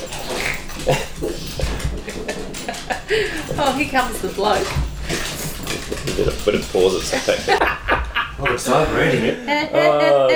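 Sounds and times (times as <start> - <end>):
laughter: 0.0 - 3.8, 6.0 - 10.3
dogs' claws clicking on a hard floor: 0.0 - 7.6
rustling: 0.0 - 7.6
speech: 0.9 - 1.1, 3.2 - 4.8, 6.2 - 10.3.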